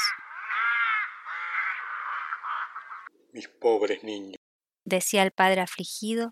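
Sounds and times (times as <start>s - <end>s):
crows cawing overhead: 0.0s - 3.1s
speech: 3.3s - 6.3s.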